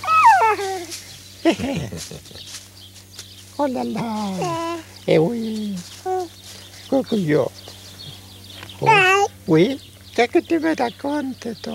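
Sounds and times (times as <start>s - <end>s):
dog whimpering: 0.0s - 0.9s, 4.3s - 4.9s, 8.8s - 9.3s
dog yipping: 0.0s - 0.9s
laughter: 0.0s - 2.6s
speech: 1.5s - 2.6s, 3.6s - 7.6s, 8.8s - 11.7s.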